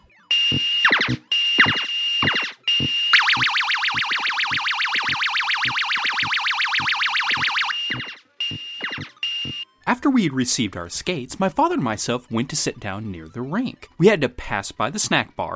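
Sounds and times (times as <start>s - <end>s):
long rapid warbling siren-like arcade game tone: 0.3s - 9.6s
loud electronic arcade game bleeps: 0.3s - 9.6s
quick falling arcade game zaps: 0.4s - 9.1s
speech: 0.5s - 1.3s, 10.0s - 15.5s.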